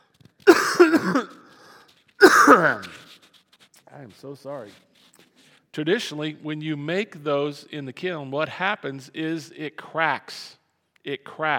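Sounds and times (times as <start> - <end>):
person coughing: 0.5 - 1.6, 2.2 - 3.0
speech: 0.8 - 1.4, 2.5 - 3.0, 4.0 - 4.9, 5.8 - 11.5.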